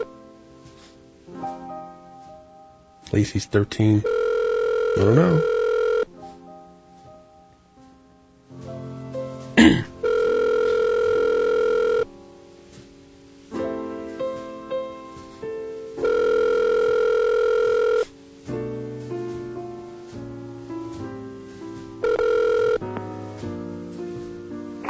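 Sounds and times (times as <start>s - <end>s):
faint tonal music-like sounds: 0.0s - 24.8s
speech: 3.1s - 4.3s, 5.0s - 5.6s
phone line ringing: 4.0s - 6.1s, 10.0s - 12.1s, 16.0s - 18.1s, 22.0s - 23.1s.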